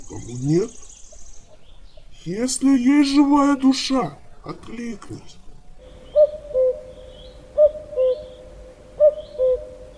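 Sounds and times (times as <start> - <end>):
faint hiss: 0.0 - 9.9
speech: 0.1 - 0.8, 2.2 - 5.4
cuckoo calling: 5.8 - 9.9.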